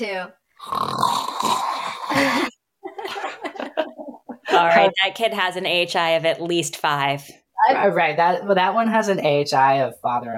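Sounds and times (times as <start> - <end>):
speech: 0.0 - 2.5, 4.6 - 10.3
person imitating snoring with a nasal snort: 0.6 - 2.6
laughter: 2.2 - 4.7.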